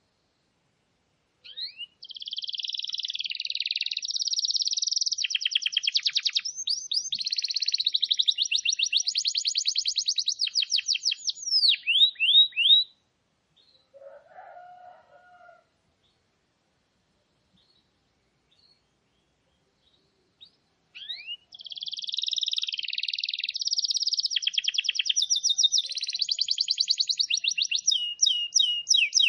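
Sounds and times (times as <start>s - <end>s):
canary singing buzzy trills and clicking notes: 1.4s - 13.0s, 20.4s - 29.2s.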